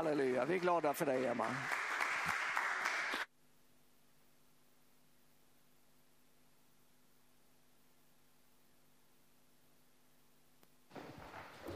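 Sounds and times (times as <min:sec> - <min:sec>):
speech: 0:00.0 - 0:01.8
congregation applauding: 0:00.0 - 0:03.3.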